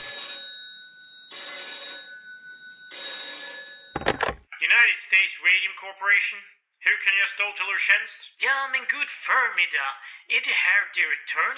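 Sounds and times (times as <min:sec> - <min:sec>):
telephone ringing: 0:00.0 - 0:04.4
telephone receiver clatter: 0:04.0 - 0:04.4
speech: 0:04.8 - 0:11.5.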